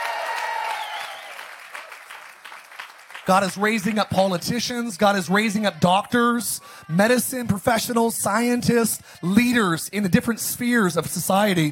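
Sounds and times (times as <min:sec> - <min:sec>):
audience applauding: 0:00.0 - 0:04.5
speech: 0:03.3 - 0:11.7.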